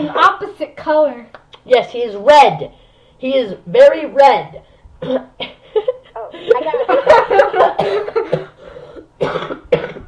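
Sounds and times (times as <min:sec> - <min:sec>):
speech: 0:00.0 - 0:08.4
person coughing in harsh irregular bursts: 0:05.0 - 0:05.6, 0:07.7 - 0:10.0
laughter: 0:05.4 - 0:08.3.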